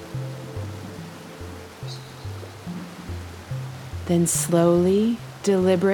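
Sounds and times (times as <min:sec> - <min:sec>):
rushing river water roaring: 0:00.0 - 0:05.9
speech: 0:04.1 - 0:05.9.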